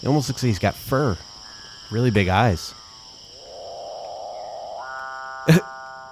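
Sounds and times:
speech: 0.0s - 1.3s, 1.9s - 2.8s
capuchinbird moaning moo call: 4.3s - 6.0s.

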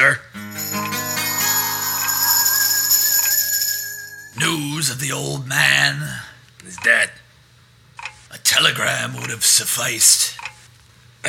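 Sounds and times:
speech: 0.0s - 0.7s, 4.4s - 7.2s, 8.5s - 10.6s
grandfather clock chiming: 0.4s - 4.7s.

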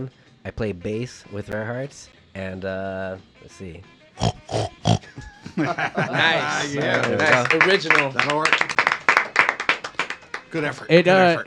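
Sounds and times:
speech: 0.0s - 8.8s, 10.5s - 11.4s
man imitating pig oinks and grunts: 4.2s - 5.2s
laughter: 5.0s - 7.7s.

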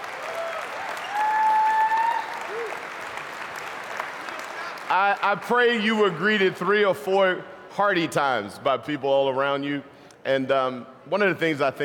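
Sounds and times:
congregation applauding: 0.0s - 5.5s
high whistle or whoop: 0.3s - 2.8s
speech: 4.9s - 11.8s.

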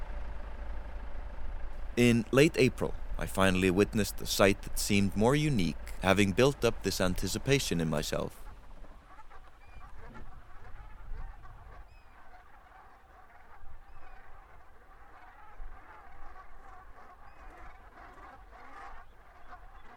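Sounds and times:
low rumble: 0.0s - 19.9s
flock of black and white geese honking softly: 1.8s - 19.9s
speech: 2.0s - 8.4s.

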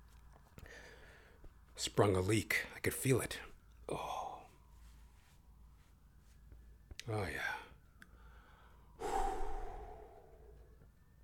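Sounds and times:
speech: 1.8s - 4.3s, 7.1s - 7.6s
deep breathing in and out: 8.2s - 10.8s.

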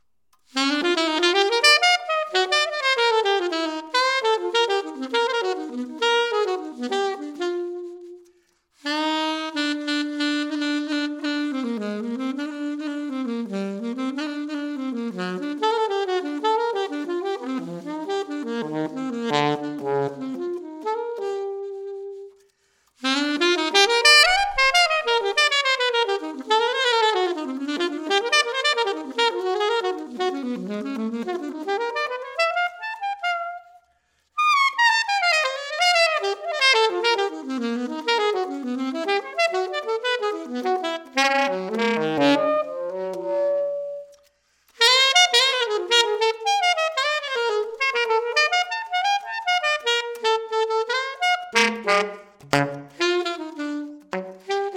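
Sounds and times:
alto saxophone improvisation: 0.0s - 54.7s.

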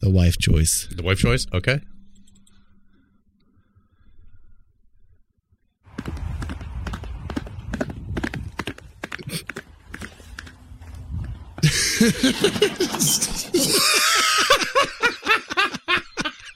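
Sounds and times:
speech: 0.0s - 2.0s, 12.0s - 15.2s
horse hooves clip-clopping on a hard road surface: 5.9s - 11.6s
laughter: 11.6s - 16.5s.

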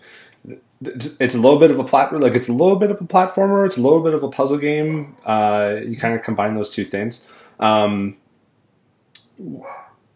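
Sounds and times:
speech: 0.4s - 8.2s, 9.4s - 9.9s
dog barking: 9.6s - 10.0s.

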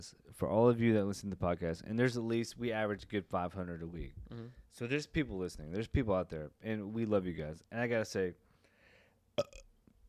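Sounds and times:
speech: 0.0s - 8.4s, 9.4s - 9.6s
burp: 9.4s - 9.8s.

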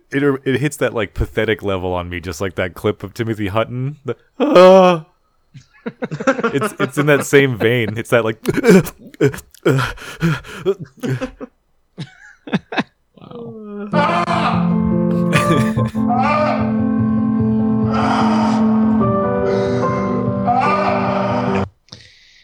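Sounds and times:
speech: 0.1s - 14.2s, 15.5s - 17.0s
laughter: 5.6s - 17.2s
person gasping for air: 8.4s - 11.5s, 21.9s - 22.4s
strained groaning wail: 13.2s - 21.8s.

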